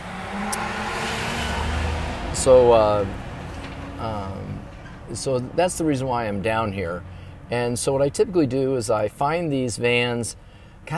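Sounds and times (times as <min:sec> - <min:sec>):
truck driving past: 0:00.0 - 0:07.5
speech: 0:02.4 - 0:03.2, 0:04.0 - 0:10.9.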